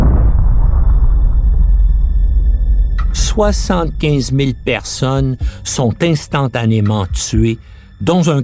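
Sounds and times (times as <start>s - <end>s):
atomic bomb explosion over a city, deep roaring blast: 0.0s - 5.8s
speech: 3.4s - 8.4s.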